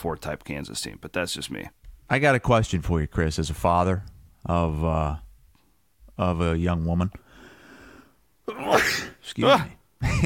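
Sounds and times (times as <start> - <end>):
speech: 0.0 - 5.2, 6.2 - 7.2, 8.5 - 10.2
loud sneeze with strained voiced buildup: 8.5 - 9.3.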